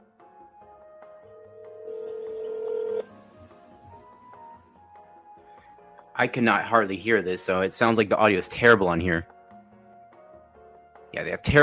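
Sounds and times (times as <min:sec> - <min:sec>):
telephone dialing tone as a call is placed: 0:01.5 - 0:03.1
speech: 0:06.2 - 0:09.4, 0:11.2 - 0:11.6.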